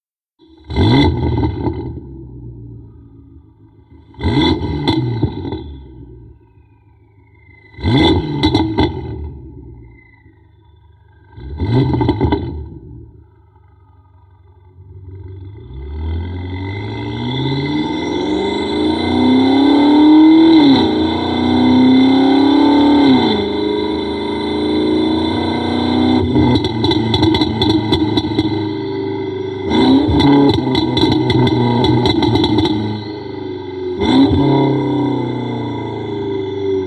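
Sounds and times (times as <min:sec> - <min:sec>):
BMW M5 car: 0:00.4 - 0:36.8.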